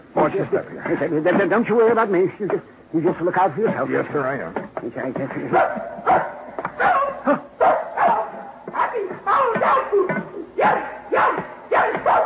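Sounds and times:
speech: 0.3 - 6.3, 7.2 - 7.5
small female dog barking and yipping: 5.6 - 12.2.

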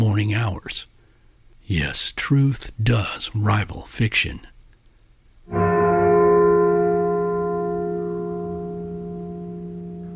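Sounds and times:
speech: 0.2 - 0.9, 1.7 - 4.5
single heavy bell tolling: 5.5 - 10.1.

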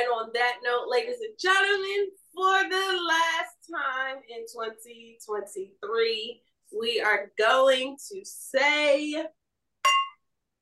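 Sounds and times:
speech: 0.2 - 10.0
wine glasses clinking in a toast: 9.8 - 10.2.

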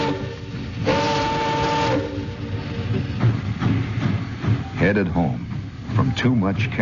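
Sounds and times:
train horn blast: 0.0 - 2.4
celery train rumbling through mist-wet rail yards in Los Angeles at night: 0.0 - 6.7
dull metallic clunks of rolling rail cars: 0.0 - 6.7
speech: 4.9 - 6.7.

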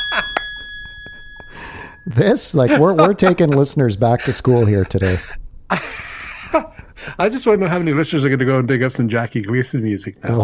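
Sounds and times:
bright bell struck: 0.0 - 3.4
speech: 2.0 - 10.4
laughter: 2.4 - 7.9.

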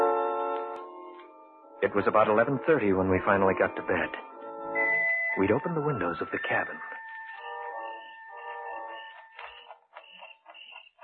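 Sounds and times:
alarm clock ticking: 0.0 - 11.0
speech: 1.8 - 4.3, 5.4 - 6.9
crickets chirping: 5.8 - 11.0.

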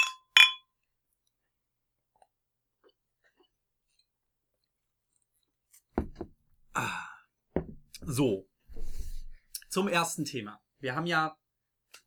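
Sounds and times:
glasses clinking during a toast: 0.0 - 0.6
soft low thud of object set down: 6.0 - 6.4, 7.6 - 9.4
speech: 8.1 - 8.5, 9.8 - 12.0.

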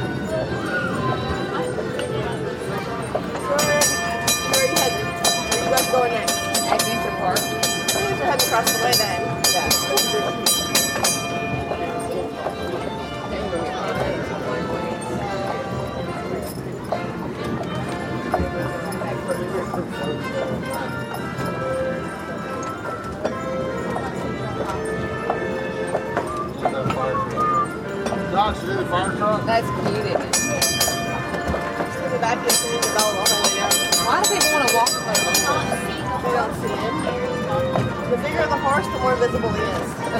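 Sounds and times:
faint voices murmuring: 0.0 - 40.1
rhythmic clatter of train or streetcar on rails: 0.0 - 40.1
train or streetcar rumbling along rails: 2.9 - 13.3, 29.8 - 37.1.

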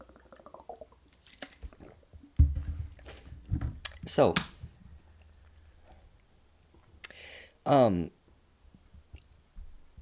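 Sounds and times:
person drinking water: 0.0 - 2.2
speech: 4.1 - 4.5, 7.7 - 8.2.

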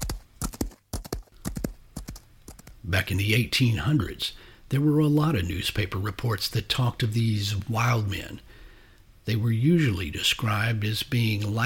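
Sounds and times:
horse hooves galloping at full speed across open plains: 0.0 - 3.0
speech: 2.9 - 8.6, 9.3 - 11.6.

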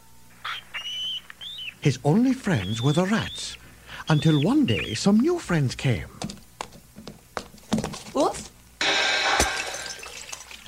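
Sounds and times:
speech: 1.8 - 6.2
glass ball smashing: 8.8 - 10.6
glass debris tinkling: 9.2 - 10.6.

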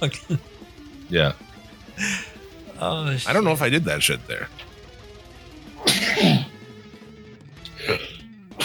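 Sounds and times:
speech: 0.0 - 4.7
person sneezing: 5.8 - 6.5.

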